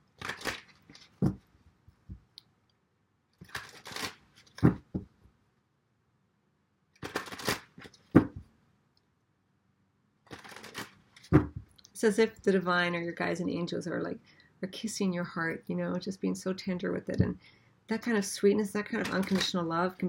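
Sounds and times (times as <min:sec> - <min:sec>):
tarot cards being shuffled: 0:00.1 - 0:01.4, 0:03.4 - 0:05.1, 0:07.0 - 0:08.4, 0:10.3 - 0:11.8, 0:18.9 - 0:20.0
speech: 0:12.0 - 0:20.0.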